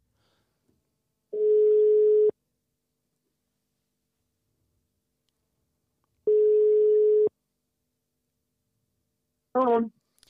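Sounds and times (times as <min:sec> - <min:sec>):
steady telephone ringing tone while placing a call: 0:01.4 - 0:02.3, 0:06.3 - 0:07.3.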